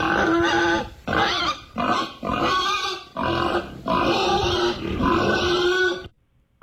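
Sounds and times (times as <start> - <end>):
pig grunting and snorting: 0.0 - 6.1.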